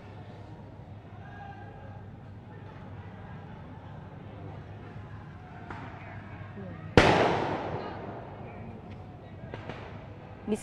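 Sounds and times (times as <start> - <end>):
steady murmur of a crowd: 0.0 - 10.6
firecracker blast with long rumbling echo: 7.0 - 8.7, 9.5 - 10.0
speech: 10.5 - 10.6.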